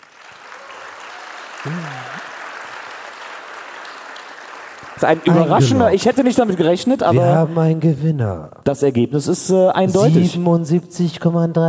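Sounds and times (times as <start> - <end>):
audience applause at a stage event announcing a competition winner: 0.0 - 6.7
speech: 1.6 - 2.3, 5.0 - 11.6.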